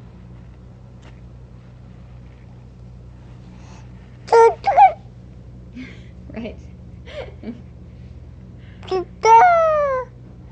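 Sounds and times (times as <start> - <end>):
speech: 6.4 - 7.7
young boy making short vocal sounds: 8.8 - 10.1.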